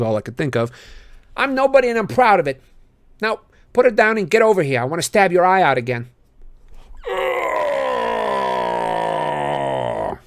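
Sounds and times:
speech: 0.0s - 6.2s
quiet breathy lead-in: 6.8s - 10.2s
human voice imitating a Cyclops's bellow: 7.0s - 10.2s.

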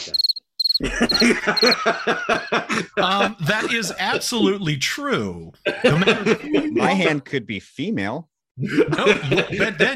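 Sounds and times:
crickets chirping: 0.0s - 1.8s
speech: 0.1s - 9.9s
laughter: 0.8s - 4.6s, 5.6s - 7.2s, 8.6s - 9.9s.

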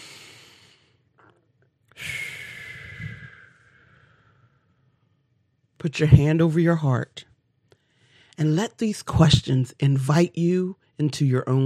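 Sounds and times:
deep inhale during a guided breathing exercise: 0.0s - 1.0s, 2.0s - 5.3s, 7.8s - 8.4s
speech: 5.8s - 7.3s, 8.4s - 11.6s.

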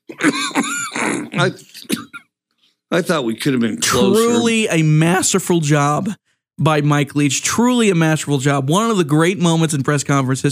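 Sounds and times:
college football coach clearing his throat of phlegm at a press conference: 0.0s - 2.3s
speech: 1.4s - 1.7s, 2.9s - 10.5s.

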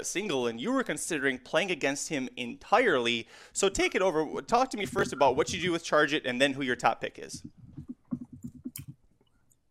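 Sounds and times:
speech: 0.0s - 7.6s
keyboard typing: 4.8s - 5.7s, 7.3s - 9.0s.

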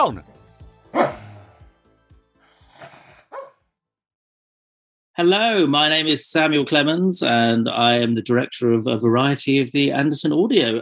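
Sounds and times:
speech: 0.0s - 0.3s, 0.9s - 1.2s, 5.2s - 10.8s
dog barking, growling and yipping: 1.0s - 1.3s, 3.3s - 3.6s.

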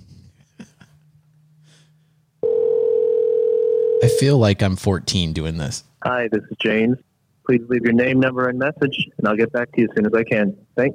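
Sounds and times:
breaths: 1.6s - 2.3s
phone line ringing tone on an outgoing call: 2.4s - 4.2s
speech: 4.0s - 10.9s.

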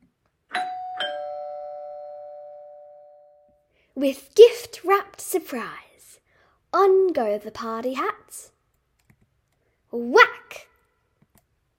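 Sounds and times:
doorbell chiming ding-dong: 0.5s - 3.6s
speech: 4.0s - 5.8s, 6.7s - 8.5s, 10.0s - 10.3s.

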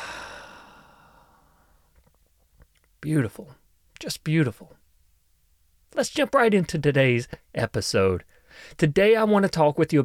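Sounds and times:
deep breathy sigh of exhaled breath: 0.0s - 1.8s
speech: 3.0s - 4.8s, 5.9s - 10.0s.

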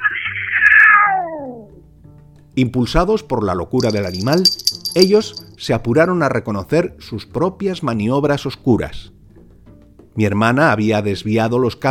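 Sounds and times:
long eerie cat meow: 0.0s - 1.8s
speech: 2.6s - 9.2s, 10.2s - 11.9s.

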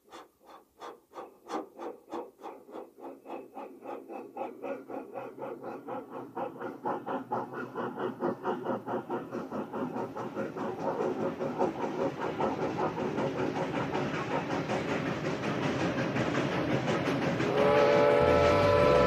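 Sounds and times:
steam locomotive chugging in Kentucky: 0.0s - 19.0s
loud shrill steam locomotive whistle: 17.5s - 19.0s.

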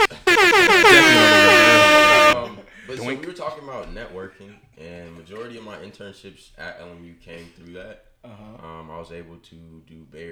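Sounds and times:
air horn blasts: 0.0s - 2.4s
speech: 3.6s - 10.2s.

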